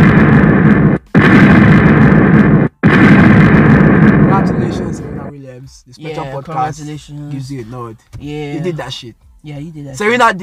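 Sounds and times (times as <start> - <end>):
bomb explosion sound effect with dense crackling roar: 0.0 - 5.3
speech: 5.9 - 10.4.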